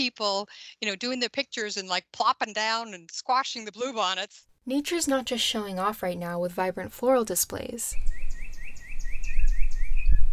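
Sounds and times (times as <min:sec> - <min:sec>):
speech: 0:00.0 - 0:08.2
birds chirping in a neighborhood in spring: 0:07.9 - 0:10.3.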